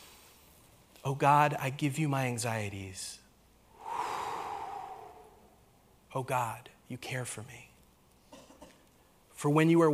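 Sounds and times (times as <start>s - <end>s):
speech: 1.0s - 3.2s, 6.1s - 7.7s, 9.4s - 9.9s
person breathing in deeply during a guided prayer: 3.7s - 5.7s.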